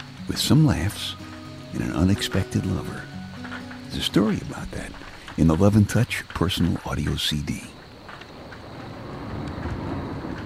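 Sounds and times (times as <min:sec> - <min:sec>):
faint scattered drips: 0:00.0 - 0:06.9
steady gentle rain falling: 0:00.0 - 0:10.4
speech: 0:00.3 - 0:03.1, 0:03.9 - 0:07.8.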